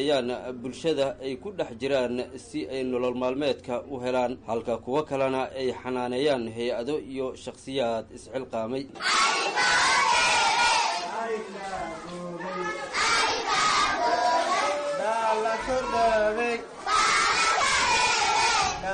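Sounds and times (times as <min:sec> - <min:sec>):
speech: 0:00.0 - 0:10.0, 0:15.6 - 0:16.7
hundreds of orphaned and street children shouting together in Mogadishu: 0:09.0 - 0:11.1, 0:12.4 - 0:18.8.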